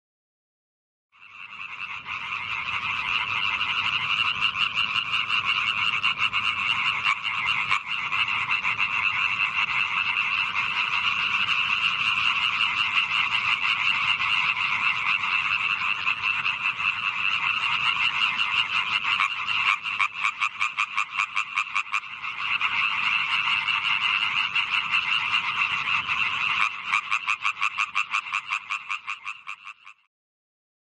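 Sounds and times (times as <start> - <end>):
tree frog calling: 1.2 - 30.1.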